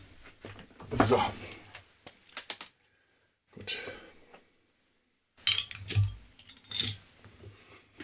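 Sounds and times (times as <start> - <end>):
speech: 1.0 - 1.4
glasses and bottles clinking while pouring a drink: 5.4 - 7.0.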